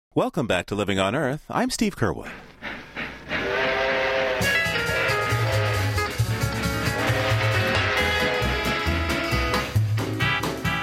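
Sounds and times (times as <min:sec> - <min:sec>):
speech: 0:00.2 - 0:02.5
passenger express train wheels clacking over tracks: 0:02.5 - 0:08.7
1949 passenger express train rumbling along rails: 0:02.5 - 0:09.0
bright passenger express train whistle: 0:02.9 - 0:09.8.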